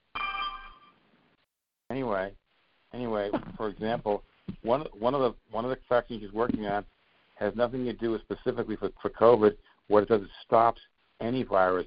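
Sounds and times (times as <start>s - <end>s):
electronic telephone ring from a man's phone: 0.1s - 1.0s
speech: 2.1s - 11.8s.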